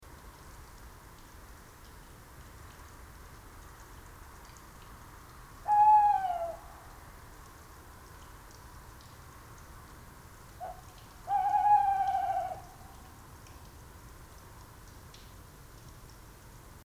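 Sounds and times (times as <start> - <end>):
tawny owl calling in Landshut: 5.6 - 7.0, 10.6 - 13.2.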